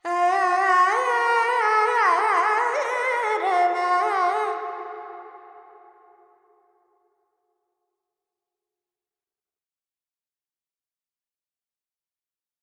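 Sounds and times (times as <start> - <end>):
Carnatic female vocal alap in Dorian with reverb: 0.0 - 5.0.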